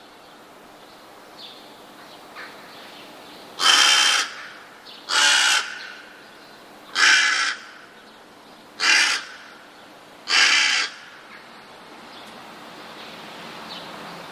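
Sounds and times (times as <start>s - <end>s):
rook cawing: 2.4s - 2.8s, 3.6s - 8.0s, 8.8s - 11.5s.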